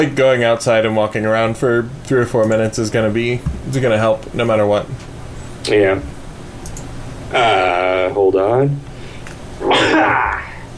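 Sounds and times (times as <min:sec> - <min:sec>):
speech: 0:00.0 - 0:06.1, 0:07.3 - 0:08.9, 0:09.6 - 0:10.4
person sneezing: 0:09.6 - 0:10.7.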